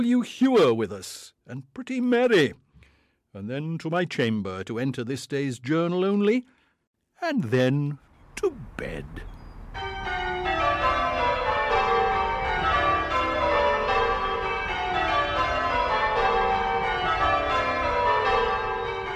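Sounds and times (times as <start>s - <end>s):
speech: 0.0s - 2.6s, 3.4s - 6.6s, 7.2s - 9.9s
church bells pealing: 9.2s - 19.1s.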